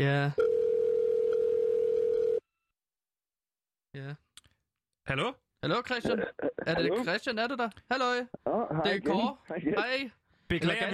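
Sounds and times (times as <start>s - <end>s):
speech: 0.0s - 0.4s, 5.1s - 10.9s
telephone ringing tone on an outgoing call: 0.4s - 2.4s.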